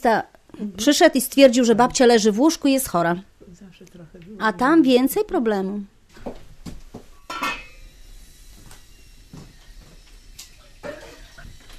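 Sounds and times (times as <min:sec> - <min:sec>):
speech: 0:00.0 - 0:05.9
metal cooking pot clinking and knocking: 0:07.2 - 0:07.9, 0:10.8 - 0:11.4.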